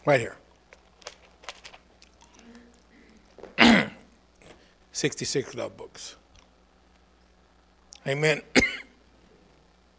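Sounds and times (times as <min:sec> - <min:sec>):
speech: 0:00.0 - 0:00.4, 0:05.0 - 0:06.2, 0:08.0 - 0:08.6
coughing and throat clearing: 0:03.4 - 0:04.1, 0:08.5 - 0:09.0.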